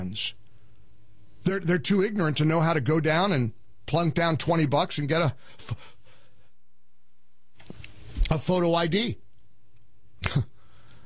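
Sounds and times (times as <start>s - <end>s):
speech: 0.1s - 0.4s, 1.4s - 6.0s, 8.3s - 9.2s, 10.2s - 10.5s
sneeze: 10.2s - 10.6s.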